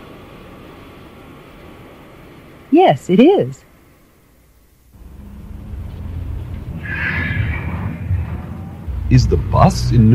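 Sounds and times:
speech: 0:02.7 - 0:03.7, 0:09.1 - 0:10.1
airplane drone: 0:04.9 - 0:10.1.

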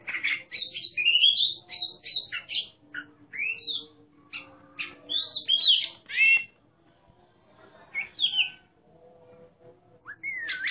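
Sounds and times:
Oriental magpie-robin whistling: 0:00.1 - 0:06.5, 0:10.1 - 0:10.6.

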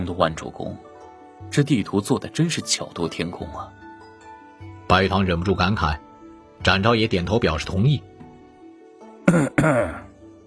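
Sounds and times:
speech: 0:00.0 - 0:03.8, 0:04.9 - 0:06.0, 0:06.6 - 0:08.1, 0:09.3 - 0:10.1
faint tonal background: 0:00.0 - 0:10.4
throat-clearing cough: 0:09.2 - 0:10.1.

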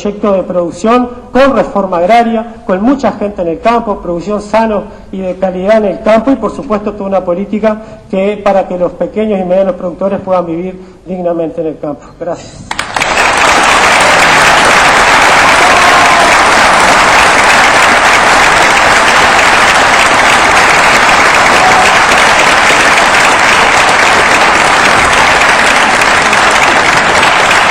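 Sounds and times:
speech: 0:00.0 - 0:13.0
crowd applauding a speech at a political event in a university auditorium: 0:12.7 - 0:27.7.

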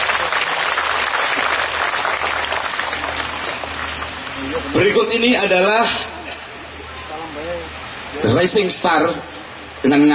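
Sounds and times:
crowd applause at a live event honouring a performer: 0:00.0 - 0:04.8
speech: 0:04.8 - 0:06.1, 0:08.1 - 0:10.1.

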